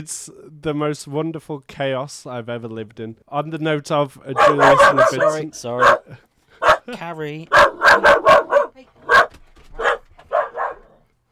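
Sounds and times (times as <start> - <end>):
speech: 0.0 - 6.3, 6.9 - 8.4
dog barking: 4.4 - 6.9, 7.5 - 11.1
laughter: 4.4 - 8.6.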